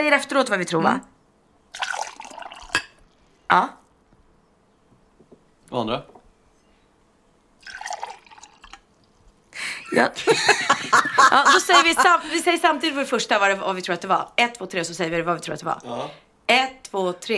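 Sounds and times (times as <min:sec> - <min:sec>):
speech: 0:00.0 - 0:01.1, 0:03.5 - 0:03.8, 0:05.7 - 0:06.2, 0:09.9 - 0:17.3
water poured into a glass: 0:01.7 - 0:02.9, 0:07.6 - 0:08.9
laughter: 0:09.6 - 0:12.5.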